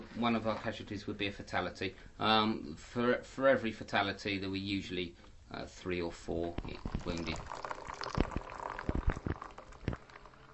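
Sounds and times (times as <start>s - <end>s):
speech: 0.2s - 7.7s
water boiling for tea in metal mugs: 6.3s - 10.5s
irregular popping and gurgling bursts of boiling water: 6.4s - 10.5s.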